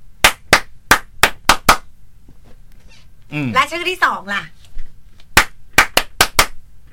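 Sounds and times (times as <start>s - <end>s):
sharp hand claps: 0.2s - 1.9s, 5.3s - 6.6s
speech: 3.3s - 4.6s.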